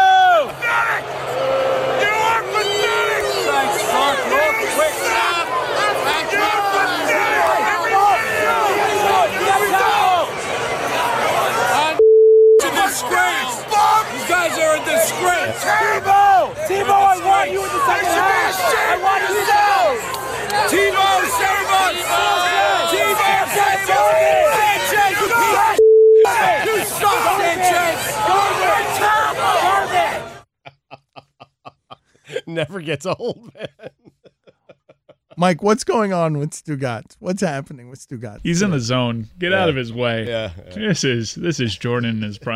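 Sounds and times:
football crowd roaring in a stadium tunnel: 0:00.0 - 0:12.0, 0:12.7 - 0:30.4
short steady tone bleeps: 0:12.0 - 0:12.7, 0:25.8 - 0:26.4
laughter: 0:26.2 - 0:27.9, 0:30.6 - 0:35.6
speech: 0:32.8 - 0:33.7, 0:35.4 - 0:42.5.

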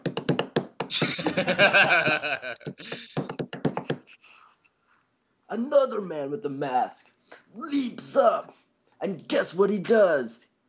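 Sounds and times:
laughter: 0:00.9 - 0:03.0
speech: 0:00.9 - 0:03.2, 0:05.5 - 0:10.6
man banging drumsticks on a door: 0:02.7 - 0:04.1.

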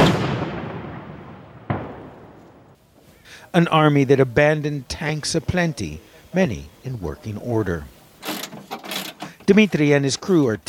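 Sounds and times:
outgoing artillery fire in a war zone: 0:00.0 - 0:02.8
speech: 0:03.5 - 0:08.0, 0:09.5 - 0:10.6.

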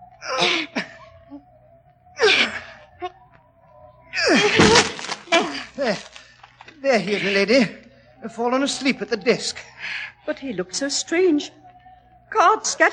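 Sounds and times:
faint steady tone: 0:00.0 - 0:12.9
two people grunting with strain: 0:00.2 - 0:01.4, 0:02.2 - 0:03.2, 0:04.1 - 0:07.8
door crashing as it gives way: 0:04.4 - 0:05.3
speech: 0:06.9 - 0:09.7, 0:10.3 - 0:11.6, 0:12.3 - 0:12.9.

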